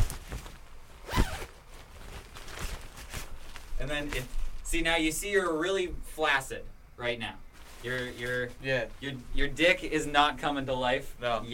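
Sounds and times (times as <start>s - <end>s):
fabric rustling: 0.0s - 4.8s, 7.5s - 9.8s
zipper being zipped up: 1.0s - 1.6s
speech: 3.8s - 11.5s.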